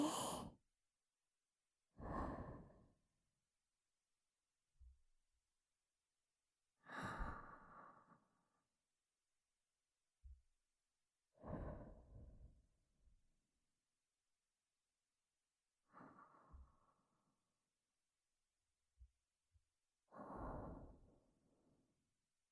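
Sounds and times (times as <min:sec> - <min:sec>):
person breathing in and out: 0:00.0 - 0:00.6, 0:02.0 - 0:03.0, 0:06.8 - 0:08.6, 0:11.4 - 0:12.5, 0:20.1 - 0:21.4.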